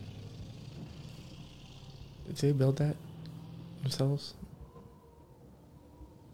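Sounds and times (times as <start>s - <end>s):
coal truck engine rumbling: 0.0s - 4.7s
speech: 2.3s - 3.1s, 3.8s - 4.4s.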